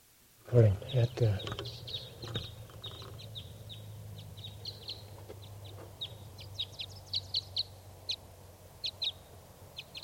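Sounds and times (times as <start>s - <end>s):
speech: 0.5s - 2.3s
flock of birds calling with short high chirps: 0.5s - 10.0s.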